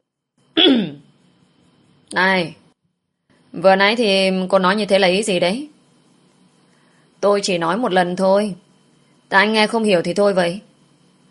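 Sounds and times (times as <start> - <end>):
throat clearing: 0.6 - 1.0
speech: 2.1 - 2.6, 3.6 - 5.7, 7.2 - 8.6, 9.3 - 10.7.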